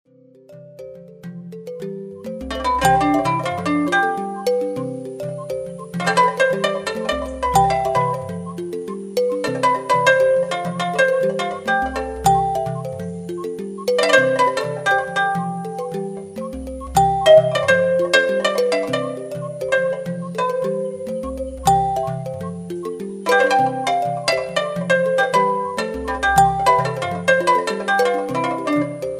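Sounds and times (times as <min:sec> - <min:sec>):
studio strings: 0:00.2 - 0:29.1.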